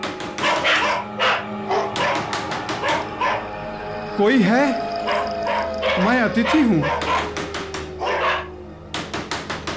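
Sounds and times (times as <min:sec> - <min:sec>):
two dogs barking excitedly: 0:00.4 - 0:03.6, 0:05.0 - 0:08.6
speech: 0:04.2 - 0:04.8, 0:06.0 - 0:07.1.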